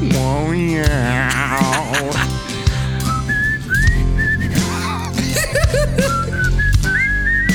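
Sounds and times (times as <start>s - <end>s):
faint voices murmuring: 0.0s - 7.5s
laughter: 0.1s - 7.2s
person whistling a wandering tune: 2.0s - 7.5s.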